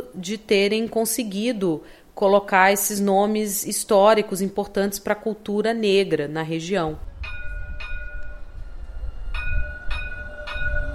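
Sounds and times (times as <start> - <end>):
speech: 0.2 - 7.1
light rail tram running on tracks through the old city centre of Rio: 7.0 - 10.9.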